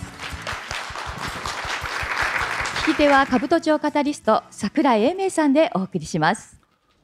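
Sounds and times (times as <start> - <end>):
audience applause: 0.0 - 3.5
speech: 3.0 - 6.6.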